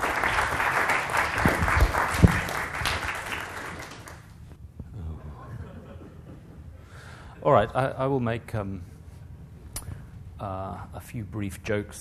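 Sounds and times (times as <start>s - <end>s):
audience applause: 0.0s - 4.3s
speech: 7.5s - 9.0s, 10.4s - 12.0s.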